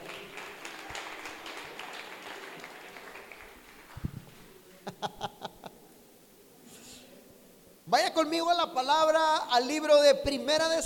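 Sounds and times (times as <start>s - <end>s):
church audience applauding: 0.0s - 4.2s
laughter: 4.7s - 5.9s
speech: 7.9s - 10.8s.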